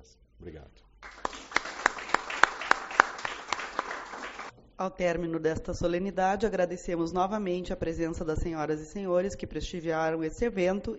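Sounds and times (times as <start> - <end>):
speech: 0.0 - 0.8, 4.8 - 10.9
sharp evenly spaced claps at a ceremony: 1.0 - 4.5.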